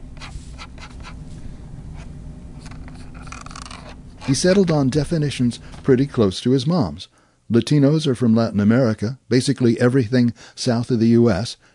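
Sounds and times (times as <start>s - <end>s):
steady low hum: 0.0s - 11.7s
drawing pencil or Japanese brush pen scratching on paper: 0.2s - 1.2s
speech: 4.3s - 11.7s.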